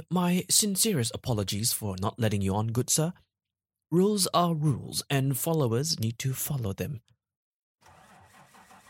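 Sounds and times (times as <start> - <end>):
speech: 0.0 - 3.3, 3.9 - 7.1
large bus engine starting and idling: 7.8 - 8.8.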